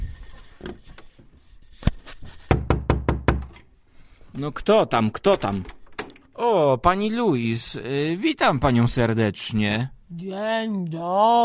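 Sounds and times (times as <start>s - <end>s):
loud knocking on a door: 2.5s - 3.5s
speech: 4.4s - 5.8s, 6.4s - 11.4s.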